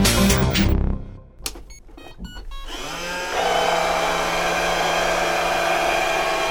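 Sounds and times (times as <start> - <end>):
robot vacuum cleaner beeps and chimes: 0.2 - 0.9
robot vacuum cleaner motor hum in spot mode: 2.7 - 6.4.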